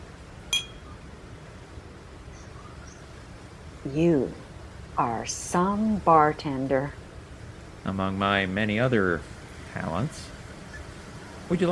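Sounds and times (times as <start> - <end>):
steady low hum: 0.0 - 11.7
two glasses clinking in a toast aboard a cruise ship: 0.5 - 0.8
speech: 3.8 - 4.4, 5.0 - 7.0, 7.8 - 10.3, 11.5 - 11.7.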